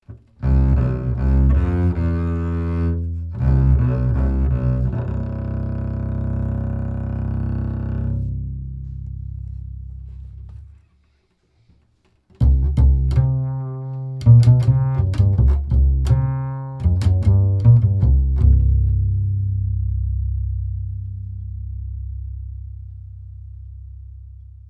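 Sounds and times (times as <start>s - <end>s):
upright bass: 0.1s - 10.8s, 12.3s - 24.6s.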